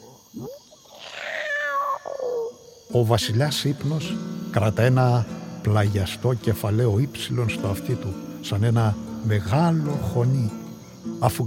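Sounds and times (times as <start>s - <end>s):
cat meowing: 1.0s - 2.1s
speech: 2.9s - 11.4s.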